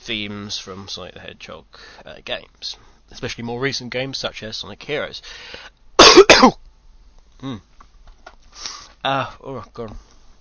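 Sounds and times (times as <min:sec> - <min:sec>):
speech: 0:00.1 - 0:06.6, 0:07.4 - 0:07.7, 0:08.6 - 0:10.1
person coughing harshly: 0:06.0 - 0:06.6.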